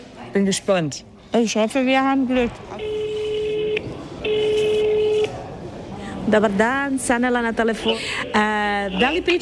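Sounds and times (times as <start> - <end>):
speech: 0.4 - 3.0, 6.3 - 9.4
telephone ringback tone of a call to a hospital: 2.8 - 5.2.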